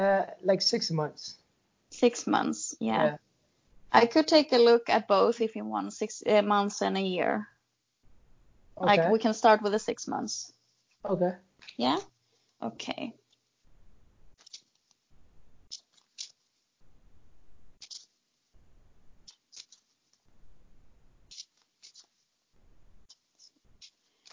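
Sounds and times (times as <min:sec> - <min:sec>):
speech: 0:00.0 - 0:03.2, 0:03.9 - 0:07.5, 0:08.8 - 0:13.2
deck of cards being shuffled with riffling and snapping: 0:14.3 - 0:15.0, 0:15.7 - 0:16.5, 0:17.8 - 0:18.2, 0:19.2 - 0:20.3, 0:21.3 - 0:22.3, 0:23.0 - 0:24.3.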